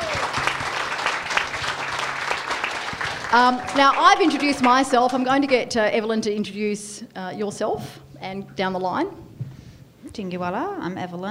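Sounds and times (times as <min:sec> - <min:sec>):
audience applause: 0:00.0 - 0:05.8
speech: 0:03.3 - 0:09.2, 0:10.2 - 0:11.3.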